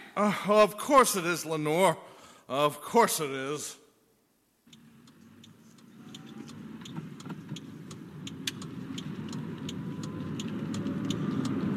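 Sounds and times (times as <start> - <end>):
speech: 0.2 - 3.8
faint rhythmic clicks overhead: 4.6 - 11.7
SUV engine humming inside a moving Korean SUV: 4.7 - 11.7.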